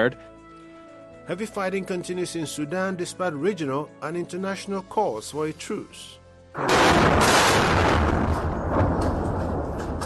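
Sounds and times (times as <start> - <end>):
speech: 0.0 - 0.3, 1.3 - 8.1
airstrike explosion near military headquarters in Khartoum: 6.6 - 10.0.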